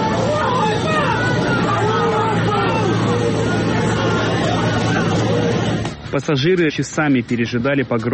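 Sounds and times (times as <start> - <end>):
raised shouts: 0.0 - 5.4
dense agitated crowd roaring: 0.0 - 5.9
speech: 6.2 - 8.1.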